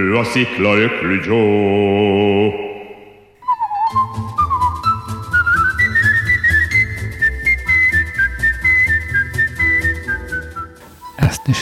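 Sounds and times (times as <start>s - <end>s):
speech: 0.2s - 2.6s
person whistling a lively march: 3.4s - 11.6s.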